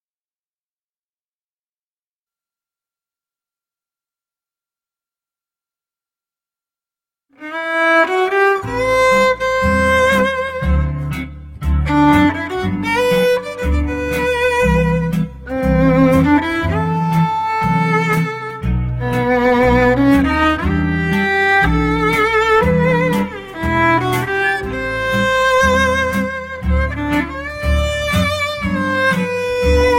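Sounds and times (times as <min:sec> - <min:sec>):
violin playing slow swing jazz: 0:07.4 - 0:29.9.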